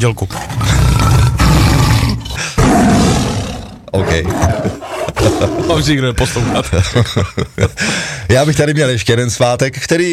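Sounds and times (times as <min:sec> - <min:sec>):
speech: 0:00.0 - 0:00.6, 0:03.9 - 0:10.1
tiger roaring and growling: 0:00.3 - 0:06.9
laughter: 0:04.0 - 0:08.1.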